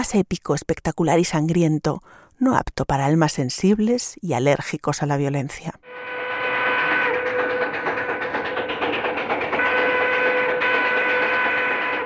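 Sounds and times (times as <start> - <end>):
speech: 0.0 - 6.1
steam locomotive whistle blowing: 5.8 - 8.2, 9.6 - 12.0
steam locomotive chugging and clattering: 5.9 - 12.0.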